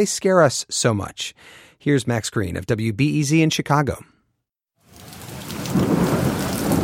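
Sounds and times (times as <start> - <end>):
speech: 0.0 - 4.1
steady hissing rain: 4.8 - 6.8
deep thunder rumble: 4.9 - 6.8.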